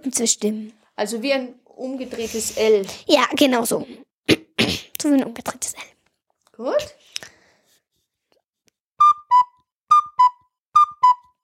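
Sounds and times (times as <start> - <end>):
speech: 0.0 - 4.0, 5.0 - 6.0, 6.6 - 7.3
cuckoo calling: 9.0 - 11.4.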